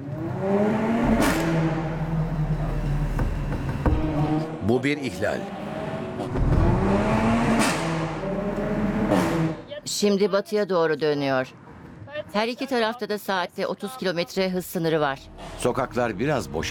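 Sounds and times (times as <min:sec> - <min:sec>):
red car's engine revving in city traffic: 0:00.0 - 0:09.7
speech: 0:04.8 - 0:05.6, 0:09.9 - 0:11.6, 0:12.3 - 0:16.7.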